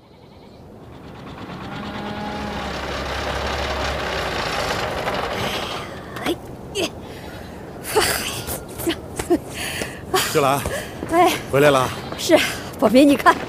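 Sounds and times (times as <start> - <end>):
borrowed tractor engine chugging with a low rumble: 0.6 - 6.6
speech: 10.4 - 13.4.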